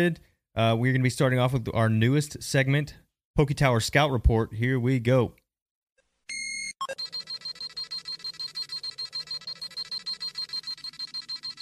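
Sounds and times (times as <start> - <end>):
speech: 0.0 - 5.4, 6.9 - 7.1
rapid train of bright high scouter beeps: 6.3 - 11.5
short sustained electronic scouter tone: 6.3 - 11.5.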